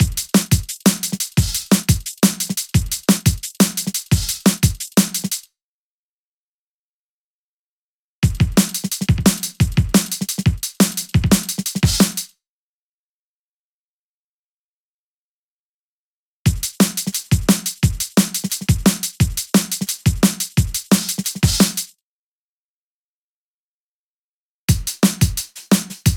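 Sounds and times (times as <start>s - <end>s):
drum patterns: 0.0s - 5.4s, 8.2s - 12.3s, 16.5s - 21.9s, 24.7s - 26.1s.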